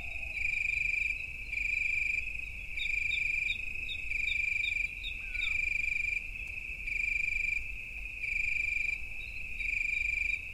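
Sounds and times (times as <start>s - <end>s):
bird of prey calling: 0.0s - 1.3s, 2.8s - 5.7s
night crickets trilling on a summer night: 0.0s - 10.5s.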